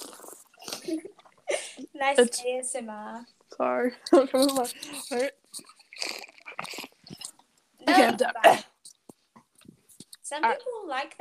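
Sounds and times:
person slurping drinking water: 0.0 - 1.5, 4.3 - 9.0
speech: 0.9 - 1.1, 2.0 - 5.7, 8.0 - 8.7, 10.3 - 11.1.

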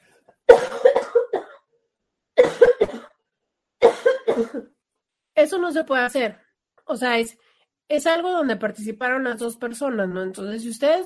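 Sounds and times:
person coughing: 0.5 - 1.6, 2.4 - 3.2, 3.8 - 4.8
speech: 4.4 - 4.8, 5.4 - 11.0.

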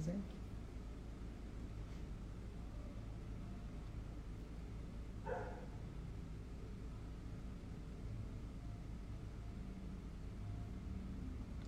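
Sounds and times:
speech: 0.0 - 0.4
steady low street rumble: 0.0 - 11.6
traffic noise: 0.0 - 11.6
dog barking in the street: 5.2 - 5.8.

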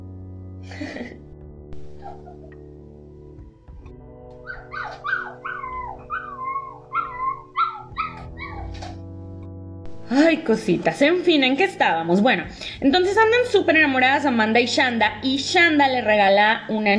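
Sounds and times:
several dogs barking and howling: 1.9 - 2.6, 4.4 - 9.0
speech: 10.1 - 16.9.

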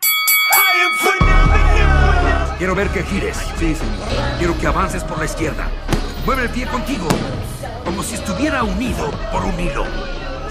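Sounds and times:
boxing bell clanging: 0.0 - 1.8
speech: 2.6 - 10.4.

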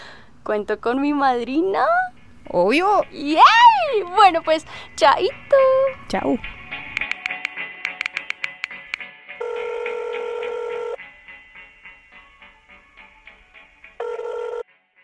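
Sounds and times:
speech: 0.4 - 6.6
eighties-style telephone ringing: 9.4 - 11.0, 12.2 - 14.7.

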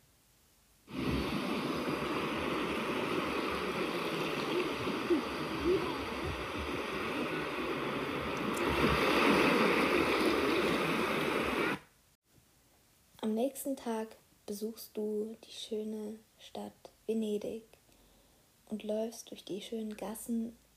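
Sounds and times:
sea waves on a beach: 0.9 - 11.9
speech: 13.4 - 17.8, 18.7 - 20.6.

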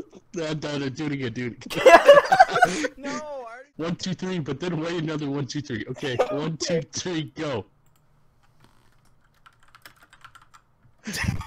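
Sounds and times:
speech: 0.3 - 7.7, 11.1 - 11.4
laughter: 1.7 - 3.3, 6.0 - 6.6, 11.0 - 11.4
quick steady keyboard typing: 7.8 - 10.7.

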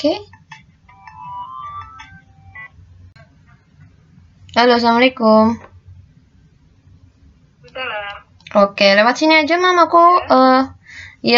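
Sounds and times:
speech: 0.0 - 0.3, 4.6 - 5.7, 8.5 - 11.3
steady low hum: 0.0 - 11.3
electronic phone ringback tones while a call is placed: 0.9 - 2.8.

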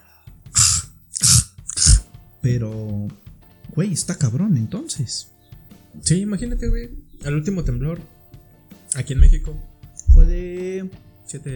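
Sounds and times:
person coughing and gagging after downing a drink: 0.6 - 2.0
speech: 2.4 - 5.4, 6.0 - 8.2, 9.0 - 11.5.

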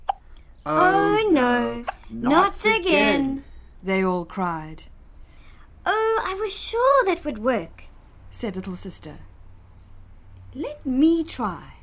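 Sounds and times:
person imitating a baby's hiccup: 0.0 - 2.3
speech: 0.7 - 4.9, 5.8 - 9.3, 10.5 - 11.8.

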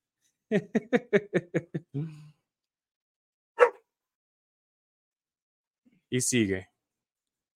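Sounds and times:
laughter: 0.5 - 2.2
speech: 0.5 - 2.2, 6.1 - 6.7
dog barking: 3.6 - 3.9.

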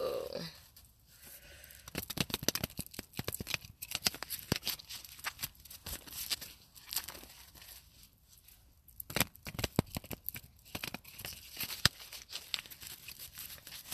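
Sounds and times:
deck of tarot cards being shuffled: 1.7 - 7.9, 9.0 - 13.9.

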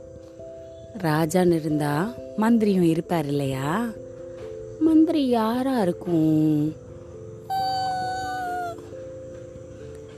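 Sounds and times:
speech: 1.0 - 4.1, 4.8 - 6.8
fox howling: 7.5 - 8.8.

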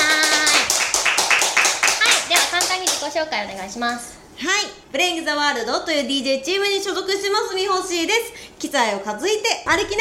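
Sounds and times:
applause from a small group welcoming guests: 0.0 - 3.0
speech: 3.0 - 9.9.

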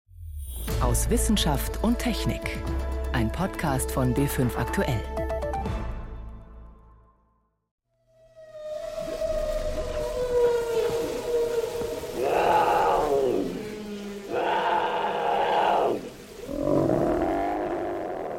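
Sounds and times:
speech: 0.8 - 5.2
long eerie whale call: 8.1 - 18.3
leopard roaring: 10.6 - 18.3.

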